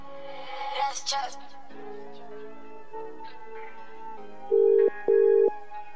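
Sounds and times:
faint music: 0.0s - 5.9s
telephone ringback tone on an outgoing call: 4.5s - 5.5s.

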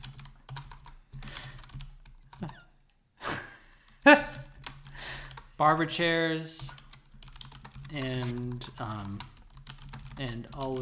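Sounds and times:
fingers typing on a computer keyboard: 0.0s - 2.7s, 4.2s - 5.6s, 6.6s - 10.8s
speech: 4.1s - 4.3s, 5.6s - 6.8s, 7.9s - 9.3s, 10.2s - 10.8s.

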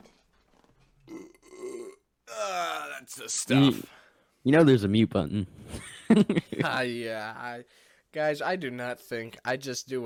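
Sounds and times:
loud drawn-out croaky burp: 1.0s - 3.2s
speech: 3.1s - 10.0s.

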